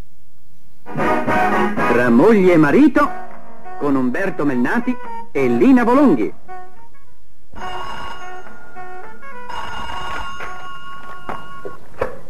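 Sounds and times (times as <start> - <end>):
speech: 2.0 - 3.2, 3.8 - 6.4
old telephone bell ringing in a vintage Italian television advert: 7.6 - 11.8.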